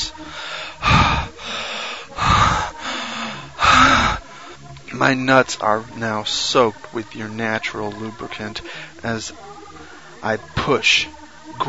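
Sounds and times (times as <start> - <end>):
man breathing heavily during sex: 0.0 - 4.7, 8.6 - 9.0
speech: 5.0 - 9.5, 10.2 - 11.6.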